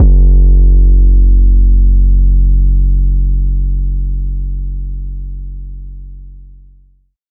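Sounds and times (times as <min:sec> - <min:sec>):
808 bass drum hit in F sharp: 0:00.0 - 0:04.9.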